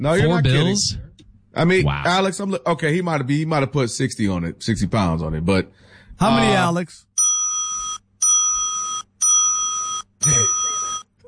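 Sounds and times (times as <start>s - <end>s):
speech: 0.0s - 7.1s
bell ringing: 7.2s - 11.0s.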